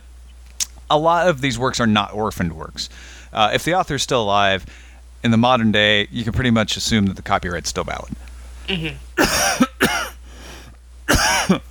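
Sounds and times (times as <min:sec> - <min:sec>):
speech: 0:00.9 - 0:10.0, 0:11.5 - 0:11.6
person coughing: 0:08.7 - 0:10.2, 0:11.1 - 0:11.6
throat clearing: 0:08.7 - 0:10.2, 0:11.1 - 0:11.6.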